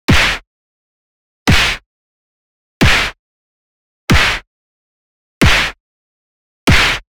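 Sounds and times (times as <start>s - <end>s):
basic old school punch hit: 0.1s - 0.4s, 1.5s - 1.8s, 2.8s - 3.2s, 4.1s - 4.4s, 5.4s - 5.8s, 6.7s - 7.0s.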